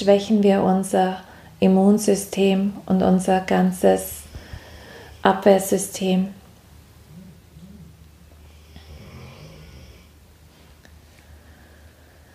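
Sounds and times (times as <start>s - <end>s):
speech: 0.0s - 4.2s, 5.2s - 6.4s
dog snoring: 7.1s - 10.2s.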